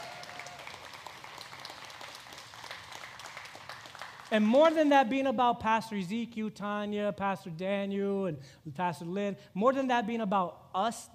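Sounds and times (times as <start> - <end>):
crowd applauding in a large room: 0.0 - 4.8
speech: 4.3 - 11.1.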